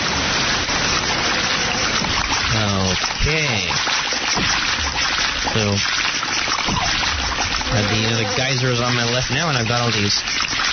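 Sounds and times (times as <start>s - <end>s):
waterfall rushing in a video game: 0.0s - 10.7s
speech: 3.3s - 4.5s, 5.6s - 5.9s, 7.9s - 10.4s.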